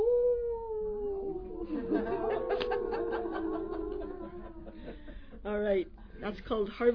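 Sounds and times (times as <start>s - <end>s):
human voice imitating a coyote howl: 0.0s - 4.9s
people laughing or chuckling: 1.4s - 5.4s
speech: 5.4s - 6.9s.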